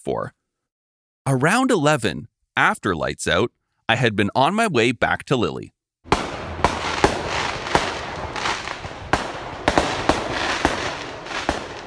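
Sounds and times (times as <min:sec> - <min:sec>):
speech: 0:00.0 - 0:00.4, 0:01.3 - 0:05.8
fireworks crackling and popping at night: 0:06.1 - 0:11.8.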